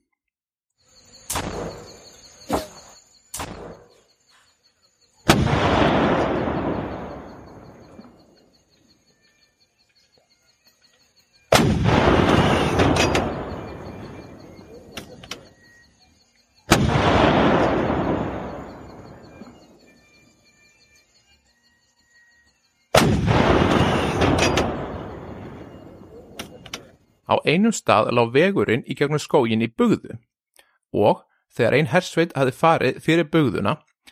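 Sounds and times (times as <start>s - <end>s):
faint background of insects: 0.0s - 34.1s
heavy artillery cannons firing explosive shells into a forest: 1.3s - 4.0s, 5.2s - 8.4s, 11.5s - 15.2s, 16.7s - 19.7s, 22.9s - 26.9s
speech: 27.3s - 30.3s, 30.9s - 33.9s.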